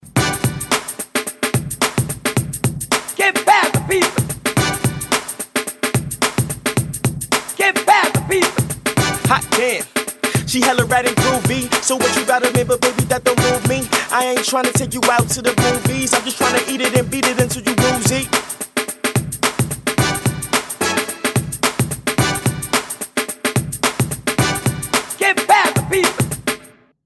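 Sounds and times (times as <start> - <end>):
swinging funky drums: 0.0 - 26.7.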